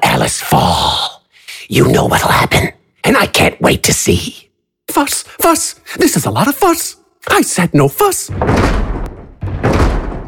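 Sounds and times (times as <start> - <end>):
speech: 0.2 - 1.0, 1.7 - 9.1
heavy pounding on large wooden double doors: 8.3 - 10.2.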